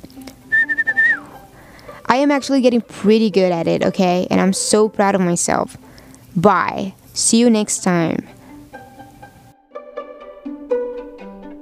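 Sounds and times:
person whistling one clear high note: 0.5s - 1.4s
speech: 2.1s - 8.4s.

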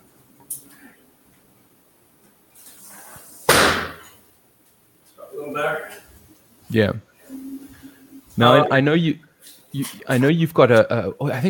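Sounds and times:
door pushed shut with a loud sharp slam: 3.5s - 4.1s
speech: 6.7s - 7.1s, 8.4s - 11.4s.

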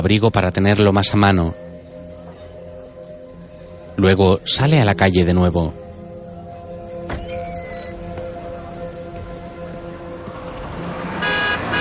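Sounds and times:
speech: 0.0s - 1.6s, 4.0s - 5.8s
city street traffic noise: 7.8s - 11.7s
taxi horn honking on a city street: 11.2s - 11.7s.

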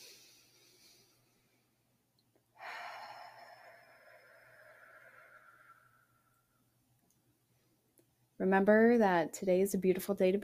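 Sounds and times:
deep breath in and out: 0.0s - 1.8s, 2.6s - 6.8s
speech: 8.4s - 10.4s.

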